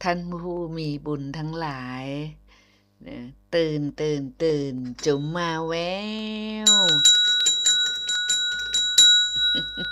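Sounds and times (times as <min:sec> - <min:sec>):
speech: 0:00.0 - 0:02.4, 0:03.0 - 0:07.1
something struck in place of a small bell as a wake-up call: 0:05.0 - 0:05.8, 0:06.5 - 0:09.9.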